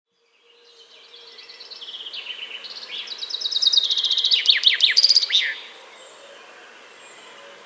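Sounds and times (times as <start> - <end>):
common chaffinch Fringilla coelebs song: 0.2 - 7.6.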